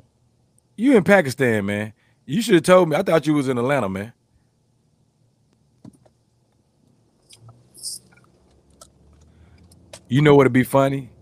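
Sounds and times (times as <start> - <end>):
speech: 0.8 - 4.2, 10.1 - 11.2
car humming in the background: 7.3 - 11.2.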